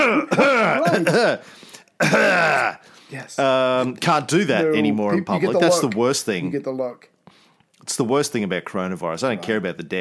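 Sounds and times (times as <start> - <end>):
man clearing his throat: 0.0 - 1.4, 2.0 - 2.8
speech: 0.2 - 7.2, 7.8 - 9.9.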